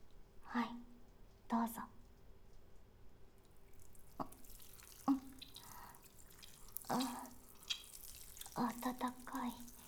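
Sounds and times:
speech: 0:00.5 - 0:00.9, 0:01.5 - 0:01.9, 0:08.9 - 0:09.7
water dripping and splashing to simulate urination: 0:03.7 - 0:09.8.

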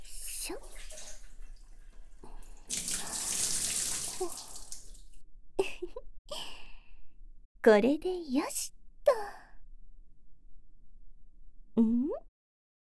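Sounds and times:
water gushing from a tap to rinse off foam: 0:00.0 - 0:05.2
speech: 0:00.5 - 0:00.9, 0:07.6 - 0:08.8, 0:11.8 - 0:12.3.

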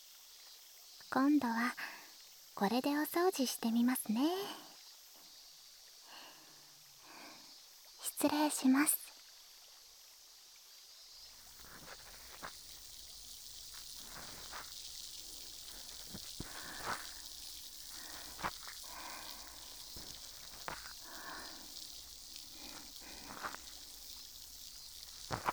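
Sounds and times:
speech: 0:01.1 - 0:01.9, 0:02.6 - 0:04.7, 0:08.2 - 0:09.0
carbonated cotton swab fizzing during cleaning: 0:11.2 - 0:25.5
sharp crackles and pops: 0:11.2 - 0:25.5.

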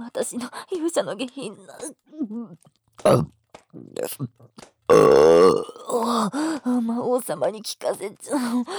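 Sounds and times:
speech: 0:00.1 - 0:08.7
soft breathy mouth noises and short vocal sounds: 0:03.0 - 0:06.1
long loud croaking burp: 0:03.1 - 0:03.3, 0:04.9 - 0:06.0.

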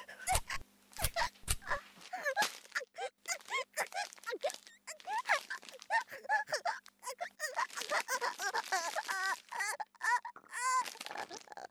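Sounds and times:
stabbing in the genitals: 0:00.3 - 0:11.6.

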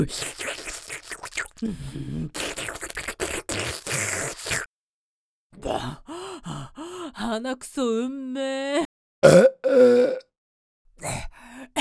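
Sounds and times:
speech: 0:00.0 - 0:00.4, 0:01.6 - 0:02.5, 0:07.4 - 0:10.0
person burping: 0:09.2 - 0:10.2
soft belch-like grunt: 0:09.2 - 0:10.2.

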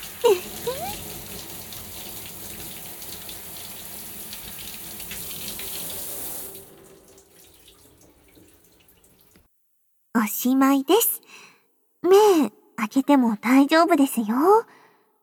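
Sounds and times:
speech: 0:00.2 - 0:00.8, 0:10.2 - 0:11.2, 0:12.0 - 0:14.8
water running from a tap while hair is rinsed: 0:00.8 - 0:09.5.

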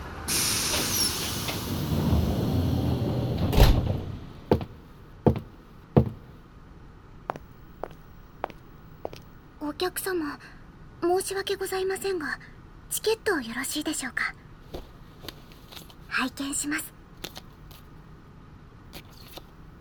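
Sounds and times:
luxury sleeper cruise train door opening with pneumatic hiss of air: 0:00.0 - 0:04.7
sleeper train door solid thump: 0:03.4 - 0:06.2
speech: 0:09.8 - 0:14.9, 0:16.2 - 0:16.9.

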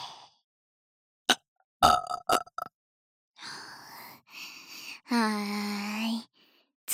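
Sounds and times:
person burping: 0:01.8 - 0:02.7
speech: 0:05.1 - 0:05.8.

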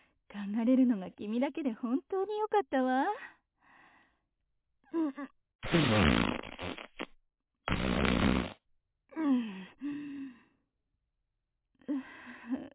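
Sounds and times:
speech: 0:00.5 - 0:03.4, 0:04.9 - 0:06.9
middle-aged woman farting: 0:05.6 - 0:08.6.

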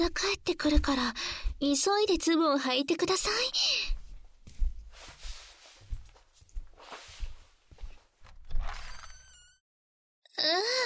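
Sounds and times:
footsteps thudding at a steady walking pace: 0:00.0 - 0:02.2, 0:03.3 - 0:08.8
speech: 0:00.0 - 0:03.9, 0:10.4 - 0:10.8
brief high squeak: 0:08.7 - 0:09.6.

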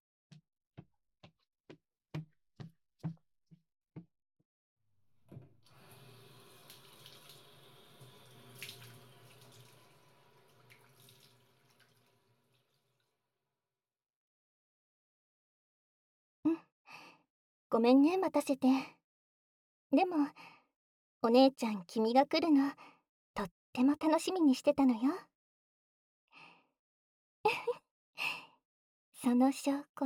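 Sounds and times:
water running from a tap while washing hands: 0:05.3 - 0:13.1
speech: 0:17.7 - 0:19.0, 0:19.9 - 0:20.6, 0:21.2 - 0:25.3, 0:29.2 - 0:30.0.

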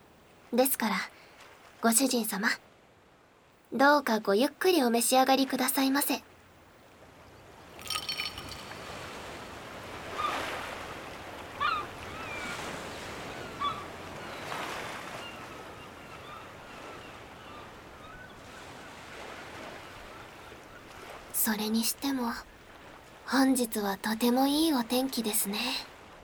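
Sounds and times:
faint water splashes: 0:00.0 - 0:07.0, 0:07.6 - 0:16.0, 0:16.6 - 0:26.2
calm ocean waves washing at a harbor: 0:00.2 - 0:02.9, 0:07.8 - 0:15.8, 0:16.6 - 0:26.2
speech: 0:00.5 - 0:01.2, 0:01.8 - 0:02.7, 0:03.7 - 0:06.3, 0:21.6 - 0:22.5, 0:23.3 - 0:25.9.

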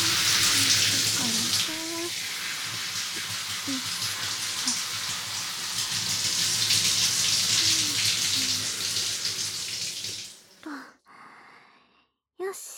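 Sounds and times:
shower spray running over hair: 0:00.0 - 0:10.5.

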